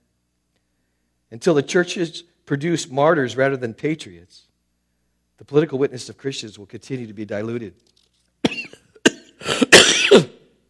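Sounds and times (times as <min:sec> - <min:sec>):
speech: 0:01.3 - 0:04.5, 0:05.4 - 0:08.6
person coughing: 0:08.4 - 0:10.5
throat clearing: 0:08.4 - 0:10.5.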